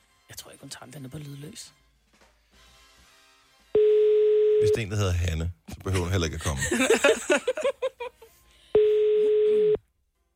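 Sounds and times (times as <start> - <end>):
speech: 0.5 - 1.8, 4.6 - 7.9
loud steady telephone busy signal on a call: 3.8 - 4.7, 8.8 - 9.8
laughter: 5.9 - 8.3.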